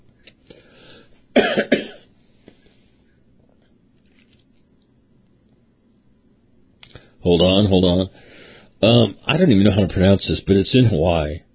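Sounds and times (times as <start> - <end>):
coughing: 1.3 - 2.1
throat clearing: 1.4 - 2.1
speech: 7.3 - 8.2, 9.4 - 11.5.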